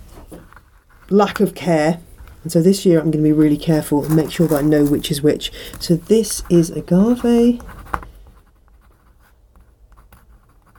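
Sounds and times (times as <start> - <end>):
speech: 1.1 - 7.8
pen scratching on a seed container label: 4.0 - 10.7.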